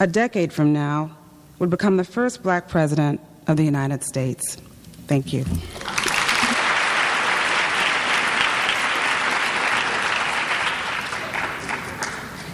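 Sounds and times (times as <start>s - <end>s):
speech: 0.0s - 5.8s
large audience applause: 5.7s - 12.5s.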